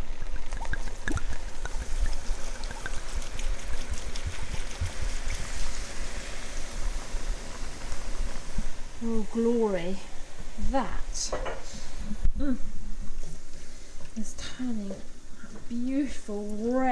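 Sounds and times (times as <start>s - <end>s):
wine poured into a hot cooking pan: 0.0s - 9.4s
sizzling in a hot cooking pan: 0.0s - 16.8s
speech: 9.0s - 11.5s, 12.4s - 12.7s, 14.2s - 15.1s, 15.7s - 16.8s.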